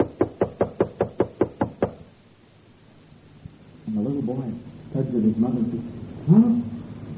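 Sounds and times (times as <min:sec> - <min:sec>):
sharp knocks on a hard surface: 0:00.0 - 0:02.0
speech: 0:04.3 - 0:06.7.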